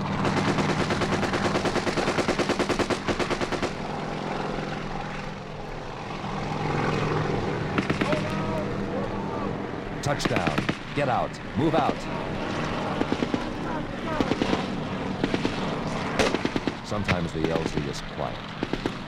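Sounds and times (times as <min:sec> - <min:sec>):
helicopter door gunner firing machine gun: 0:00.0 - 0:03.9, 0:07.7 - 0:08.4, 0:10.1 - 0:11.0, 0:12.9 - 0:17.8, 0:18.6 - 0:19.0
helicopter rotor roar: 0:00.0 - 0:19.0
speech: 0:10.1 - 0:12.3, 0:16.9 - 0:18.6.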